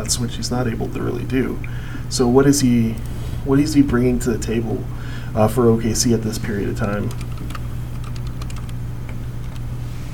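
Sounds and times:
speech: 0.0 - 7.4
rapid typing on a computer keyboard: 6.7 - 9.7.

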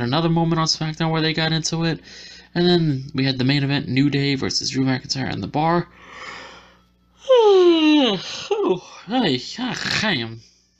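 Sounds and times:
speech: 0.0 - 6.4, 7.5 - 10.5
loud yawn with long voiced sigh: 7.2 - 9.0.

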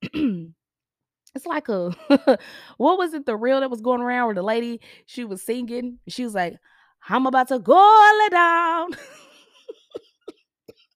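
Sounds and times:
person coughing: 0.0 - 0.6
speech: 1.4 - 9.2.

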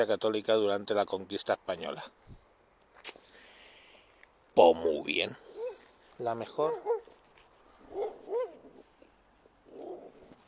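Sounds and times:
speech: 0.0 - 2.3, 4.6 - 5.5, 6.2 - 7.0
dog barking: 5.5 - 5.9, 6.6 - 7.1, 7.9 - 8.7.

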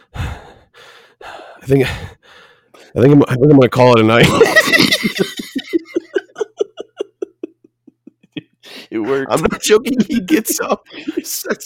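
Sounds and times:
voice imitating heavy strained breathing: 0.0 - 3.0, 8.4 - 9.4
speech: 1.6 - 5.4, 9.1 - 11.6
laughter: 4.1 - 11.6.

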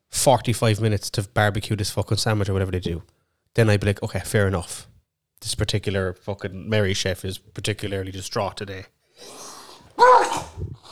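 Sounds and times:
speech: 0.2 - 10.8
person sneezing: 9.2 - 10.8.

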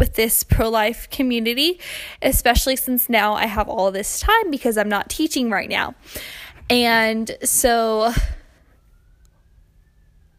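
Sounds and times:
speech: 0.2 - 8.4
emergency vehicle siren wailing outside: 5.5 - 10.3.

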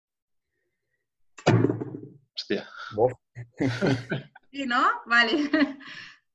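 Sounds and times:
half-kilo weight dropped on a wooden table: 1.4 - 2.2
speech: 2.5 - 6.1
laughter: 3.4 - 4.5.

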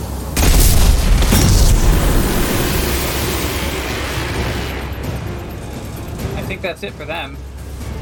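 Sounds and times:
gunfire in a video game battle against robotic mechs: 0.4 - 5.7
explosions in a video game battle against robotic mechs: 0.4 - 6.7
speech: 6.6 - 7.5.

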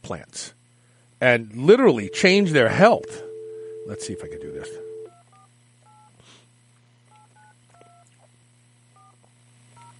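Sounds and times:
steady hum: 0.0 - 9.9
speech: 0.1 - 0.6, 1.2 - 3.3, 3.9 - 4.9
telephone keypad tones: 2.0 - 6.1.

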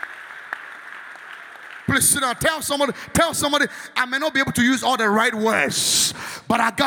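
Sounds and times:
large crowd applauding: 0.0 - 2.4
speech: 1.9 - 6.8.

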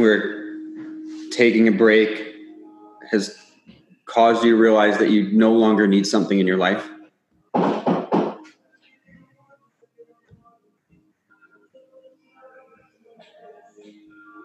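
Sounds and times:
speech: 0.0 - 0.4, 1.3 - 2.3, 3.1 - 3.4, 4.1 - 7.0, 7.6 - 7.8
loud rapid knocks on a door: 7.6 - 8.4.

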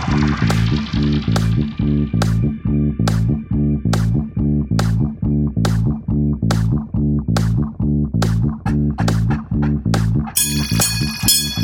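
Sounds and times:
steady rhythmic music with a pulsing low beat: 0.0 - 11.6
bright bell ringing as interval signal: 10.4 - 11.6.

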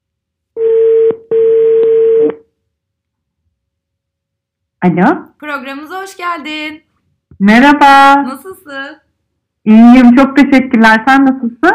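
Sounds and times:
telephone ringing tone on a call being dialed: 0.6 - 2.4
speech: 4.8 - 9.0, 9.6 - 11.7.

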